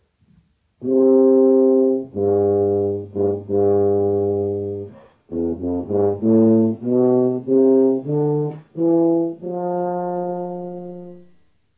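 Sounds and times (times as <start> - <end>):
tuba: 0.4 - 11.7.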